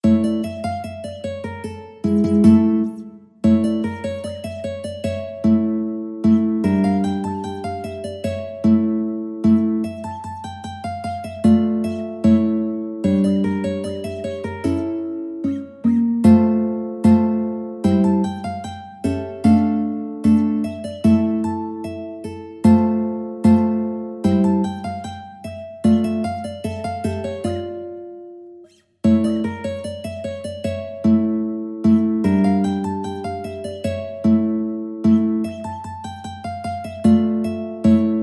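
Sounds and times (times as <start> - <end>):
mandolin playing: 0.0 - 38.2.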